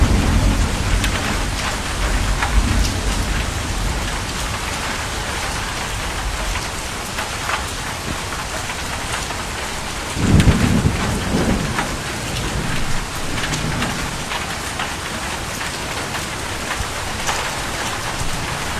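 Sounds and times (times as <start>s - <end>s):
deep rumble: 0.0s - 6.7s
heavy rain downpour hissing: 0.0s - 18.7s.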